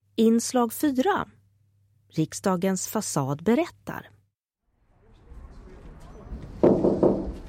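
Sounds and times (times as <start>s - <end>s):
speech: 0.2s - 1.4s, 2.1s - 4.2s
heavy knocks on a large copper door: 6.6s - 7.4s.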